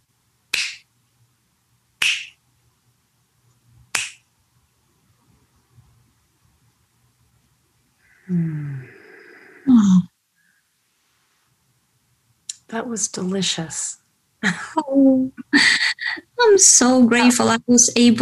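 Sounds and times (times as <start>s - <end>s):
crisp finger snaps at the end of a meditation: 0.5s - 0.9s, 2.0s - 2.4s, 3.5s - 4.2s
speech: 8.3s - 8.6s, 12.7s - 18.2s.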